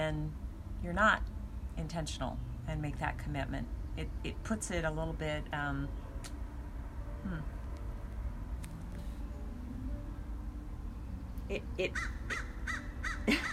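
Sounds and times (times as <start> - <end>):
faint low rumble: 0.0 - 12.3
speech: 0.1 - 6.4, 7.2 - 7.6, 11.5 - 12.5, 13.3 - 13.5
crows cawing in redwood trees: 11.9 - 13.5.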